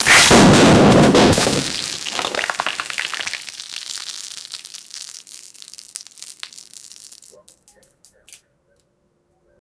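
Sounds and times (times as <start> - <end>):
person crushing a bath bomb: 1.1 - 7.4.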